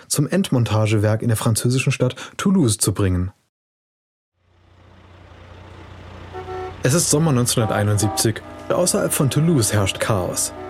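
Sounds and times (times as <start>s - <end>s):
speech: 0.1s - 3.4s, 6.8s - 10.6s
heavy engine of a 30-meter low-loader truck rumbling on a country road: 4.4s - 10.6s
brief tonal car horn blare: 6.2s - 10.6s.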